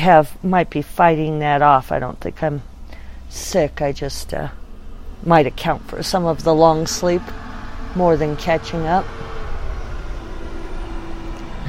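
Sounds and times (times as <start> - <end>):
speech: 0.0 - 2.7, 3.3 - 4.6, 5.2 - 9.3
garbage truck engine rumbling past outside: 2.7 - 11.6.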